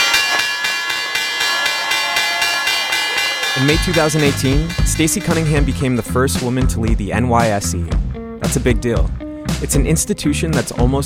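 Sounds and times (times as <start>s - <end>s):
stock exchange opening bell ringing: 0.0s - 6.1s
speech: 3.6s - 11.0s.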